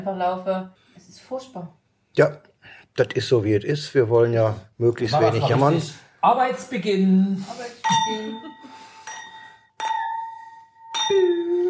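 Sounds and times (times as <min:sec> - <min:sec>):
speech: 0:00.0 - 0:08.8, 0:11.1 - 0:11.6
glasses clinking together in a toast: 0:07.8 - 0:11.6.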